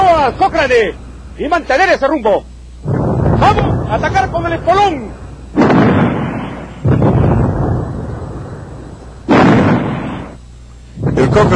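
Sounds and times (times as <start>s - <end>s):
speech: 0.3s - 6.1s, 11.4s - 11.5s
naval cannon blasts from an armored warship in a sea battle: 2.8s - 10.4s, 11.0s - 11.5s
shell explosion striking a ship's command tower: 2.8s - 11.5s.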